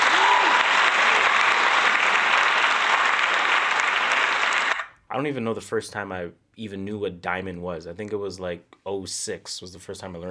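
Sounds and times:
crowd applauding an album going diamond: 0.0s - 4.9s
speech: 5.2s - 10.2s.

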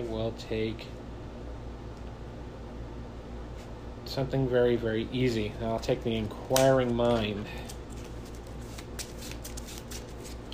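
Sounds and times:
speech: 0.1s - 1.0s, 4.2s - 7.8s
playing cards being riffle shuffled back into the deck: 6.4s - 10.5s.

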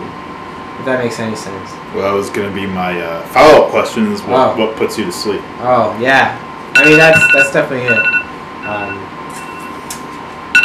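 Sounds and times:
speech: 0.8s - 9.1s
electronic alarm with high-pitched tones: 6.8s - 9.8s.

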